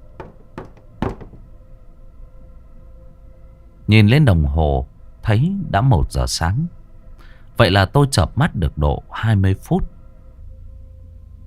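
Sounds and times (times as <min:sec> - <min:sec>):
hollow knocks on a door at night: 0:00.0 - 0:01.6
speech: 0:03.9 - 0:06.8, 0:07.6 - 0:09.9.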